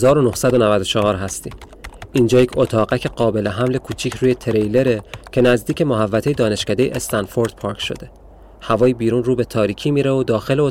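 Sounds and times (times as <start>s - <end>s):
typing on a computer keyboard: 0.0s - 8.1s
speech: 0.0s - 10.6s.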